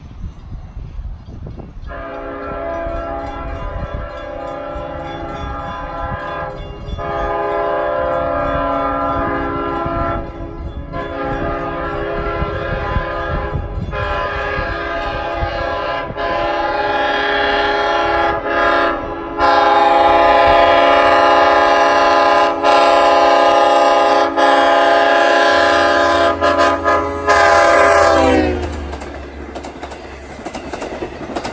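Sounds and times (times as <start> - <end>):
horns blasting: 1.9 - 29.5.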